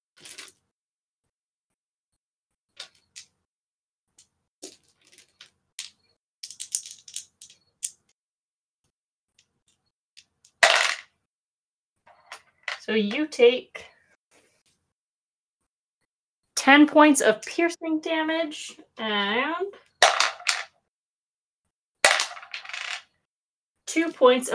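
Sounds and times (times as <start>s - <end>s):
dice clattering as they are rolled: 0.2s - 0.6s, 4.6s - 8.1s, 10.5s - 11.1s, 20.0s - 20.7s, 22.1s - 23.1s
plastic dice rattling as someone sifts through them: 4.6s - 8.1s, 20.0s - 20.7s, 22.1s - 23.0s
speech: 12.9s - 13.9s, 16.7s - 19.9s, 23.9s - 24.5s.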